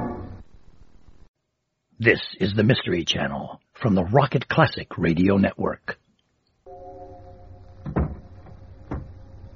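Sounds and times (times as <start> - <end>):
speech: 2.0 - 6.0
door swinging shut with a heavy thud: 7.8 - 9.2.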